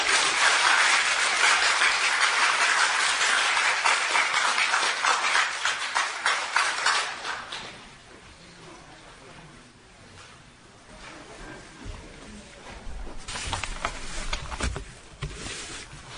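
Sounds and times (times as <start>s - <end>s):
large audience applauding: 0.0s - 7.9s.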